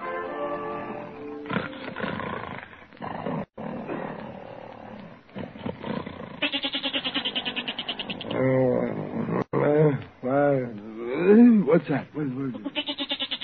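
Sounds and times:
rough growly animal noises: 0:01.4 - 0:11.6
goat bleating at night: 0:06.4 - 0:08.4, 0:12.5 - 0:13.4
speech: 0:11.8 - 0:12.8.

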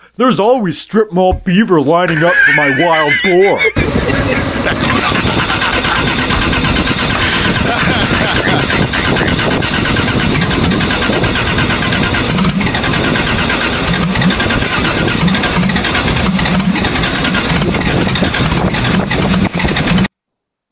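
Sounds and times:
speech: 0:00.2 - 0:05.6
laughter: 0:02.1 - 0:10.0
car engine cranking and starting: 0:03.8 - 0:20.1.

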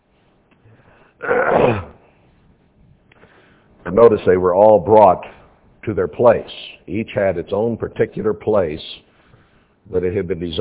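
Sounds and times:
speech: 0:01.2 - 0:01.8, 0:04.0 - 0:08.9, 0:09.9 - 0:10.5
forceful honking nose blow: 0:01.2 - 0:02.1.

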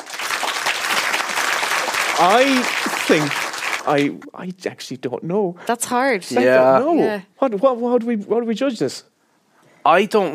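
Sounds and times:
audience applause of many hands clapping: 0:00.0 - 0:04.2
speech: 0:02.2 - 0:09.1, 0:09.8 - 0:10.3.

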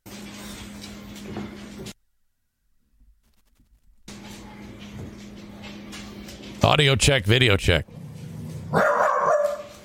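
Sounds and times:
speech: 0:06.6 - 0:08.0
dog barking: 0:08.7 - 0:09.8.

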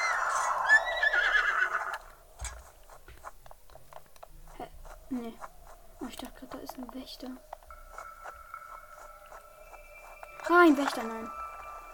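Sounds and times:
horse neighing in a video game: 0:00.0 - 0:02.0
speech: 0:05.1 - 0:05.5, 0:06.1 - 0:07.6, 0:10.5 - 0:11.4.

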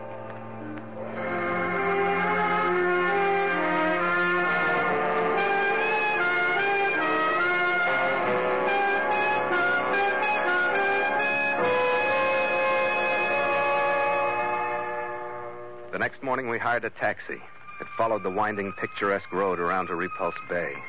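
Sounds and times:
foghorns sounding in a foggy harbor: 0:00.0 - 0:16.2
speech: 0:16.4 - 0:20.8.

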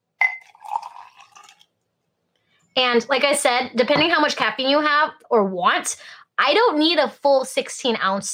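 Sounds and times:
glass clink: 0:00.2 - 0:01.5
pure Japanese matcha tea pouring from a bowl into a glass: 0:00.2 - 0:01.7
speech: 0:02.8 - 0:08.3.

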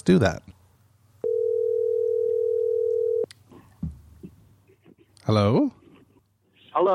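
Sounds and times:
speech: 0:00.0 - 0:00.6, 0:05.3 - 0:05.8, 0:06.8 - 0:06.9
telephone dial tone in a car: 0:01.2 - 0:03.3.

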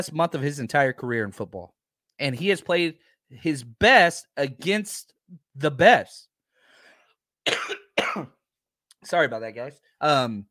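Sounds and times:
speech: 0:00.0 - 0:06.3, 0:07.4 - 0:08.4, 0:09.0 - 0:10.4
person coughing: 0:07.4 - 0:08.4.

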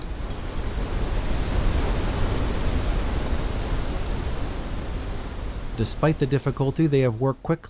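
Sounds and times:
pounding waterfall roaring: 0:00.0 - 0:07.4
speech: 0:05.8 - 0:07.6.

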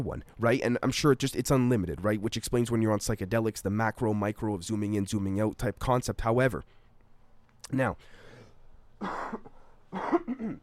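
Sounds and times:
speech: 0:00.0 - 0:06.8, 0:07.6 - 0:08.2, 0:09.0 - 0:10.6
man coughing roughly: 0:09.0 - 0:10.6.

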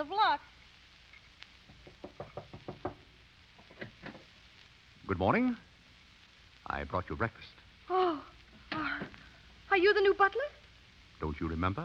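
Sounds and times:
speech: 0:00.0 - 0:00.6, 0:05.1 - 0:05.7, 0:06.7 - 0:08.3, 0:09.8 - 0:10.6, 0:11.2 - 0:11.8
sharp knocks on a wooden door: 0:01.7 - 0:03.1.

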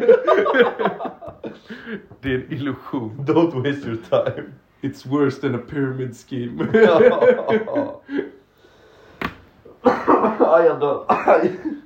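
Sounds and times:
people laughing: 0:00.0 - 0:02.0, 0:06.5 - 0:08.3, 0:09.8 - 0:11.8
speech: 0:02.3 - 0:08.3, 0:09.8 - 0:11.8
person coughing: 0:09.8 - 0:10.4, 0:11.1 - 0:11.8.

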